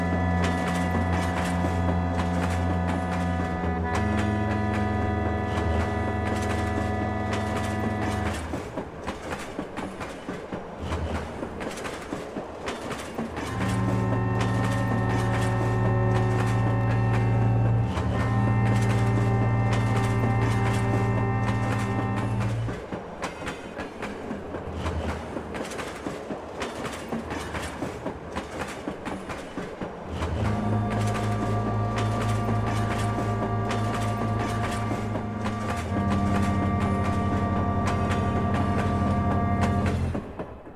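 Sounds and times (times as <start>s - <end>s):
loud sustained horn-like drone: 0.0s - 8.6s, 13.4s - 22.7s, 30.4s - 40.3s
passenger train wheels clattering along the rails: 0.0s - 40.7s.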